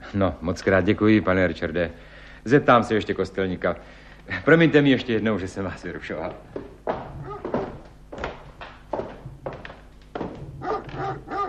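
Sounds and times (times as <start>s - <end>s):
speech: 0.1s - 6.7s
dog barking sharply: 7.2s - 7.6s, 10.6s - 11.4s.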